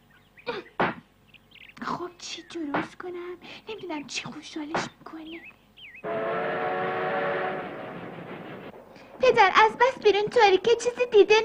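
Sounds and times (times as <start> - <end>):
speech: 2.2 - 6.6, 9.2 - 11.4
train whistle blasting at night: 6.0 - 8.1
moving train rumbling at night: 6.0 - 11.4.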